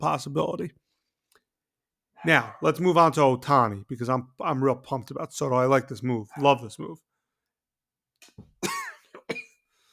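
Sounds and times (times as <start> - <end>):
speech: 0.0 - 0.8, 2.2 - 7.1
person coughing: 8.6 - 9.6
throat clearing: 8.6 - 9.6.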